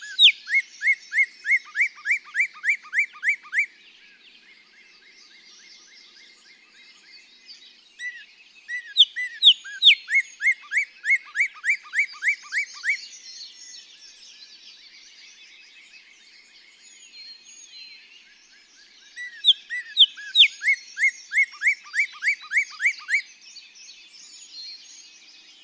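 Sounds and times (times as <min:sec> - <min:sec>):
Northern Cardinal song of rapid repeated down-slurred whistles: 0:00.0 - 0:25.6.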